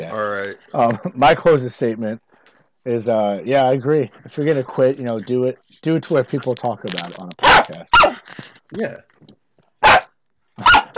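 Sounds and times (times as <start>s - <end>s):
speech: 0.0s - 2.2s, 2.8s - 9.4s
dog barking: 9.8s - 10.9s.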